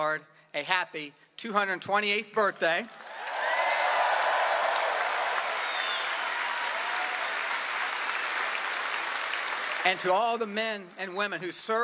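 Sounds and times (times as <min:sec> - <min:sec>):
speech: 0:00.0 - 0:03.1, 0:09.8 - 0:11.8
applause from a large audience: 0:02.9 - 0:10.2
faint cheers from a large audience: 0:03.0 - 0:08.0.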